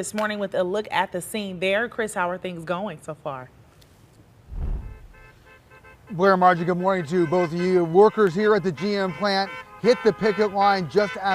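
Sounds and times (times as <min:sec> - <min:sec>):
speech: 0:00.0 - 0:03.6, 0:06.1 - 0:11.3
outdoor road noise: 0:03.5 - 0:11.3
car passing by: 0:04.5 - 0:05.3
car horn honks: 0:05.0 - 0:11.3.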